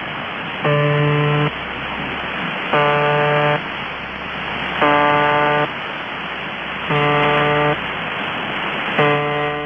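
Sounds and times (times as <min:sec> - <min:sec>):
harsh buzzing tone from a Russian shortwave radio station: 0:00.6 - 0:01.5, 0:02.7 - 0:03.7, 0:04.8 - 0:05.8, 0:06.9 - 0:07.8, 0:09.0 - 0:09.6
shortwave radio hiss and static: 0:00.6 - 0:09.6.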